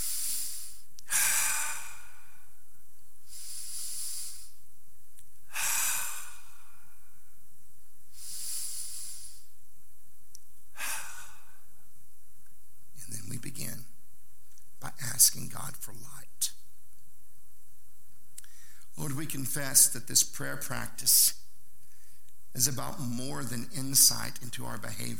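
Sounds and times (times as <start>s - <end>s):
slow deep human breathing during a guided prayer practice: 0.0s - 4.7s, 5.4s - 7.4s, 8.1s - 9.6s, 10.7s - 11.9s, 18.4s - 19.0s, 21.8s - 22.4s
speech: 15.2s - 16.6s, 19.0s - 21.4s, 22.6s - 25.1s.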